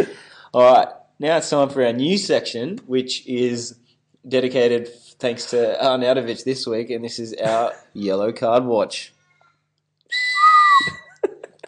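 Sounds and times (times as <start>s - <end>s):
speech: 0.0s - 9.2s
person whistling imitating a referee's whistle: 10.1s - 11.1s.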